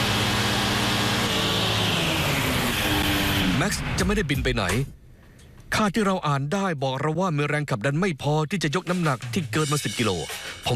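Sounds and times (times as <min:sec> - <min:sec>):
aircraft engine throttled up to lift off: 0:00.0 - 0:03.6
speech: 0:03.6 - 0:05.0, 0:05.7 - 0:10.7.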